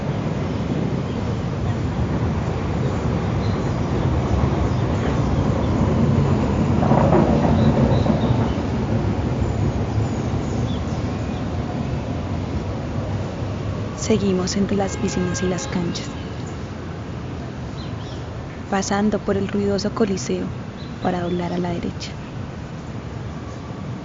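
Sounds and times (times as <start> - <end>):
metro train rumbling across an elevated viaduct: 0.0 - 24.0
speech: 14.1 - 16.2, 18.7 - 22.2.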